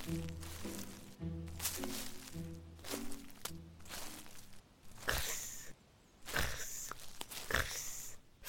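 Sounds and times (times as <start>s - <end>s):
short plucked melody: 0.0s - 4.5s
footsteps crunching through dry leaves in a forest: 0.0s - 5.7s, 6.3s - 8.2s.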